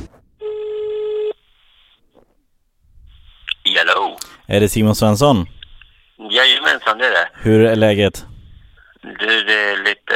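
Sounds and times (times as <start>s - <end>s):
telephone ringback tone on an outgoing call: 0.4s - 1.4s
speech: 4.5s - 5.6s, 6.4s - 8.3s, 9.1s - 10.0s.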